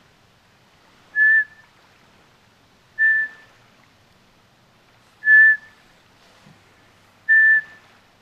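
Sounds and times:
Eurasian pygmy owl autumn whistling song on the shore of Lake Saimaa: 1.2 - 1.7, 3.0 - 3.5, 5.2 - 5.8, 7.3 - 7.8.

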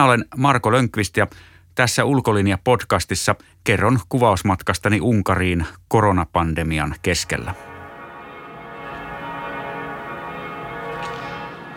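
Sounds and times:
speech: 0.0 - 7.7
large cathedral bells ringing: 7.2 - 11.7.

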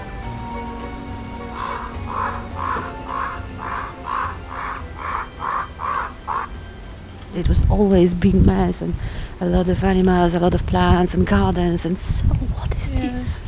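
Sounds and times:
a little wind over an empty farmyard: 0.0 - 13.4
raven calling over an empty farmyard: 1.0 - 7.2
speech: 7.4 - 13.4.

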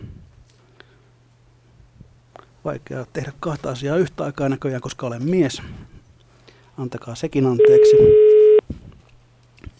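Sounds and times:
speech: 2.6 - 5.9, 6.8 - 8.2
faint telephone line hum: 7.4 - 8.6
telephone ringing tone on the line: 7.6 - 8.6.

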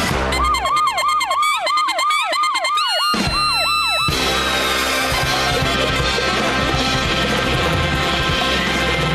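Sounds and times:
police car siren wailing in rising and falling whoops: 0.1 - 4.4
laughter: 0.3 - 9.0.

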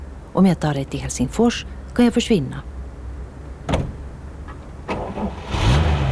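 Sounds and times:
speech: 0.4 - 2.7
car engine cranking and starting: 3.6 - 6.0
car revving and driving off: 4.9 - 6.0.

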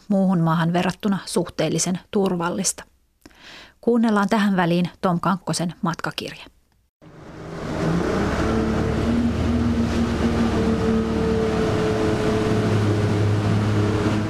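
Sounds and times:
speech: 0.1 - 2.9, 3.5 - 6.5
boat engine droning while crossing the Tigris river: 7.0 - 14.2.

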